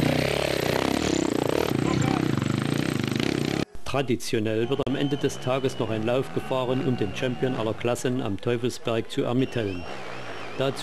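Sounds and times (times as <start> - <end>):
motocross motorcycle engine roaring while climbing a hill: 0.0 - 3.7
speech: 3.9 - 10.8.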